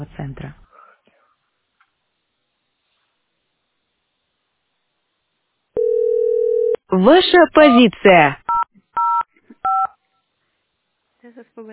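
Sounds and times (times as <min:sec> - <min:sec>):
speech: 0:00.0 - 0:00.6, 0:06.9 - 0:08.4, 0:11.2 - 0:11.7
telephone keypad dialing tones on an automated phone line: 0:05.8 - 0:06.8.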